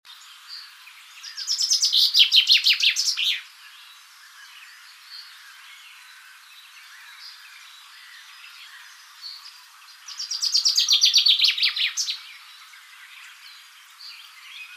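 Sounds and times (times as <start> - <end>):
common chaffinch Fringilla coelebs singing rattling descending phrases: 1.2 - 3.4, 10.1 - 12.5.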